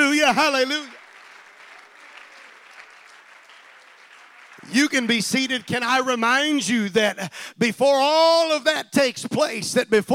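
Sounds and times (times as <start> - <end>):
church audience clapping: 0.0 - 6.8
speech: 0.2 - 1.0, 4.7 - 10.1.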